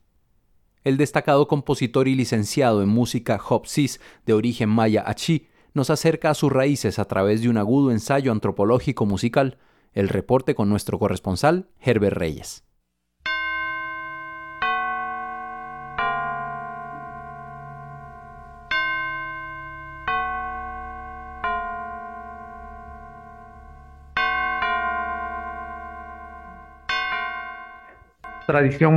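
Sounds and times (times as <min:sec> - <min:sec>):
speech: 0:00.8 - 0:12.7, 0:28.5 - 0:28.9
church bells ringing on All Saints' Day in a Maya Achí custom: 0:13.3 - 0:28.9.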